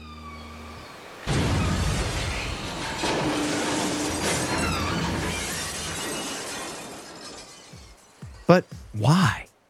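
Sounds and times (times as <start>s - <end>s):
crashing and splintering din of orcas attacking small boats: 1.3s - 7.6s
speech: 8.5s - 9.5s.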